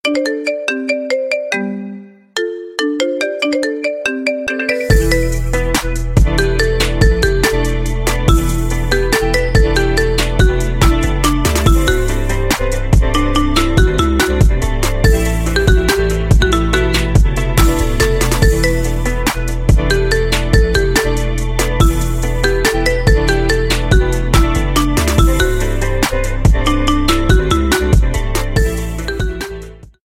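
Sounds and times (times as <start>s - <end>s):
marimba remix ringtone: 0.0s - 29.9s.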